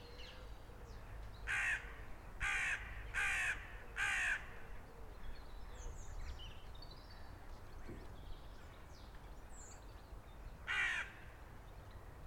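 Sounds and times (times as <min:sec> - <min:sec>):
crows crowing in cemetery in Kingston London England: 0:01.5 - 0:04.8, 0:10.6 - 0:11.4.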